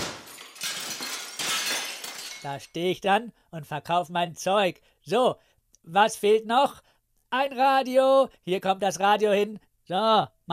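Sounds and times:
caravan window glass being smashed out: 0.0s - 2.7s
speech: 2.4s - 10.5s.

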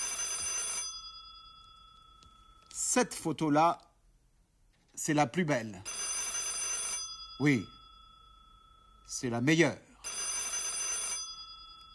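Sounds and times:
telephone bell ringing: 0.0s - 2.8s, 5.8s - 11.9s
speech: 3.0s - 3.9s, 5.0s - 6.0s, 7.4s - 7.8s, 9.1s - 9.9s.

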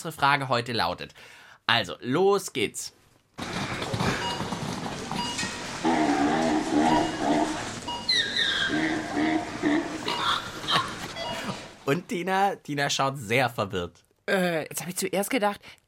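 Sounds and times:
speech: 0.0s - 3.7s, 11.9s - 15.8s
zebra hooves trotting: 3.4s - 11.8s
busy continuous shop noise: 3.4s - 11.9s
supermarket scanner beeps: 4.1s - 5.7s, 6.4s - 8.4s, 11.2s - 11.6s.

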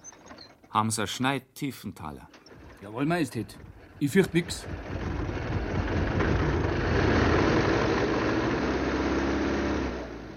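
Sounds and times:
speech: 0.7s - 5.1s
engine of a large royal car running: 2.5s - 10.3s.

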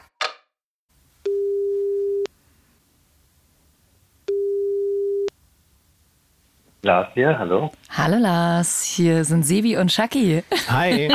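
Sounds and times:
quiet phone line hiss: 1.0s - 8.4s
speech: 6.8s - 11.1s
laughter: 10.5s - 11.1s.

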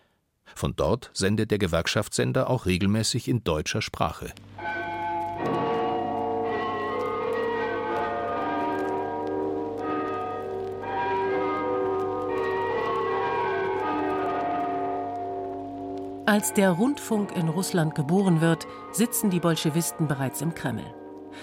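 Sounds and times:
speech: 0.6s - 4.7s, 16.3s - 21.4s
tower bells in Russia chiming an anthem: 4.6s - 21.4s.

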